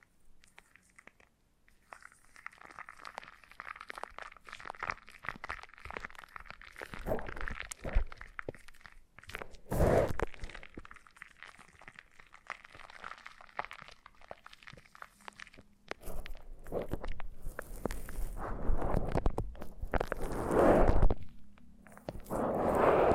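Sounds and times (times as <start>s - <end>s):
foam being squeezed and rubbed: 6.8s - 8.8s, 9.5s - 10.5s, 16.0s - 21.3s, 22.1s - 23.1s.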